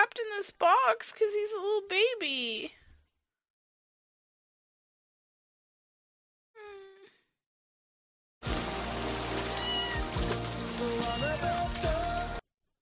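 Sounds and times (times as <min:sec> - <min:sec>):
speech: 0:00.4 - 0:02.8
rain pouring: 0:08.4 - 0:12.4
cat meowing: 0:09.4 - 0:10.2.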